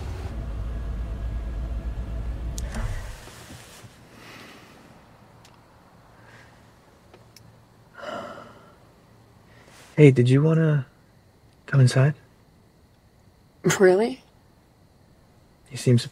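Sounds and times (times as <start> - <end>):
car engine rumbling as the car pulls up and stops: 0.0 - 8.0
shuffling sounds: 2.9 - 5.0, 9.6 - 10.0
faint clicks: 5.4 - 5.6, 7.1 - 7.5
speech: 10.0 - 10.9, 11.7 - 12.2, 13.6 - 14.2, 15.7 - 16.1.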